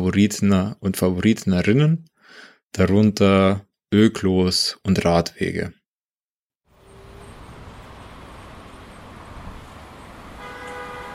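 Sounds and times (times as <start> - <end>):
speech: 0.0 - 5.8
dense traffic roar at a central roundabout: 6.7 - 11.1
car horn sustained honk: 10.3 - 11.1.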